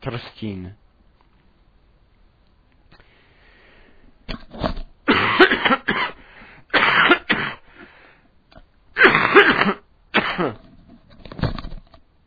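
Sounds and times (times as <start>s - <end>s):
speech: 0.0s - 0.8s
person clearing throat: 5.1s - 7.6s, 9.0s - 10.7s
harsh coughs: 5.1s - 7.7s, 9.0s - 10.6s.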